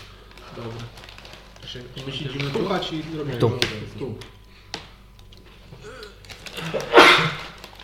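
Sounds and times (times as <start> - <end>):
speech: 1.7 - 4.4
person sneezing: 5.8 - 7.6.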